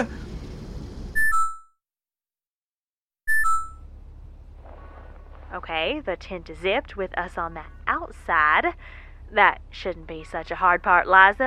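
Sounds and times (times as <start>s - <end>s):
rumbling noise: 0.0s - 1.2s, 3.8s - 11.4s
electronic proximity alarm two-tone beep: 1.2s - 1.8s, 3.3s - 3.9s
speech: 5.6s - 11.4s.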